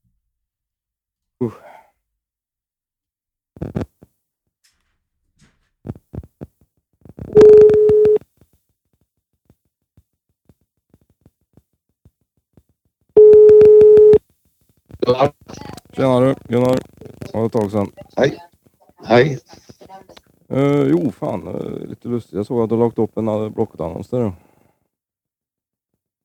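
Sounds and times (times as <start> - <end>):
speech: 1.4 - 1.7, 16.0 - 18.5, 19.2 - 19.6, 20.6 - 24.4
telephone ringback tone while placing a call to a seller: 7.3 - 8.2, 13.2 - 14.2.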